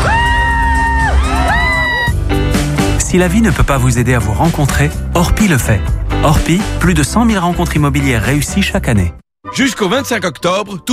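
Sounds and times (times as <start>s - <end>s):
woman screaming in a nightclub: 0.0s - 2.2s
speech: 3.1s - 10.9s.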